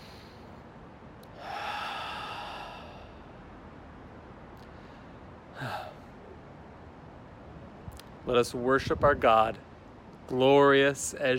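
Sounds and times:
person taking a deep centering breath at a worship gathering: 0.0 - 0.6, 1.3 - 3.5, 4.6 - 6.2
speech: 8.3 - 9.7, 10.3 - 11.3.

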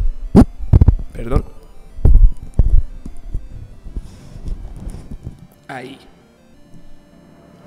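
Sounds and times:
microphone being handled and repositioned: 0.0 - 1.2, 2.0 - 5.5
speech: 1.2 - 1.5, 5.7 - 6.2.

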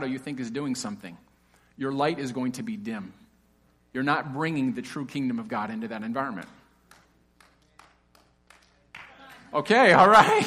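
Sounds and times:
speech: 0.0 - 3.2, 3.9 - 6.6, 9.5 - 10.4
audience clapping: 6.4 - 9.5.

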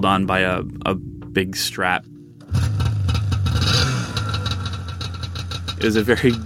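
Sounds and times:
speech: 0.0 - 2.7, 5.8 - 6.4
snowmobile engine revving with exposed engine and no plastic covering: 2.5 - 5.5.

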